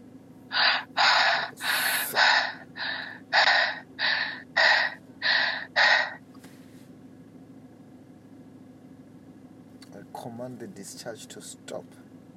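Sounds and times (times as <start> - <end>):
heavy forceful breathing in and out during a prayer session: 0.5 - 6.2
low steady drone: 0.5 - 6.2
speech: 10.5 - 12.1.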